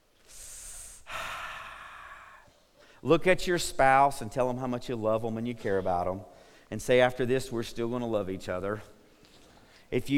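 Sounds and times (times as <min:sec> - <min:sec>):
group drawing a deep breath during a church sermon on marriage: 0:00.1 - 0:03.0, 0:06.3 - 0:06.8, 0:09.0 - 0:09.9
speech: 0:03.0 - 0:09.0, 0:09.9 - 0:10.1.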